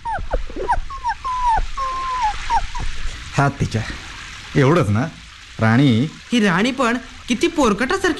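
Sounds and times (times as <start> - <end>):
wet shivering puppy whimpering: 0.0 - 3.0
faint noise: 0.0 - 8.1
speech: 3.4 - 8.1.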